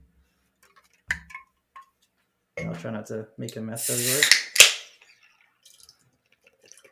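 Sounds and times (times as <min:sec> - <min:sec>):
speech: 0:02.8 - 0:04.4
beer foam fizzing and crackling: 0:03.8 - 0:04.4
can of Guinness beer opening with hiss: 0:03.8 - 0:04.9.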